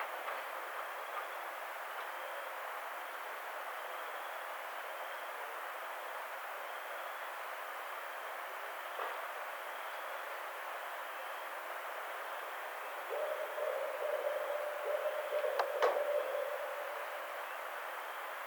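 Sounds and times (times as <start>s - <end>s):
background hiss: 0.0s - 18.4s
barred owl hooting: 12.8s - 17.8s.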